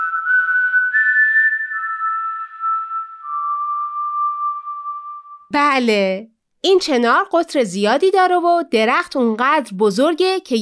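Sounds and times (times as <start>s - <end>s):
person whistling a slow melody: 0.0s - 5.5s
speech: 5.5s - 10.6s.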